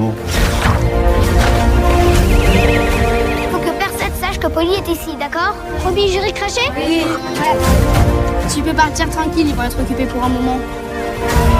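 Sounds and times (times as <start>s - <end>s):
pony whinnying loudly: 0.5s - 3.7s, 6.6s - 7.8s
speech: 4.6s - 11.5s.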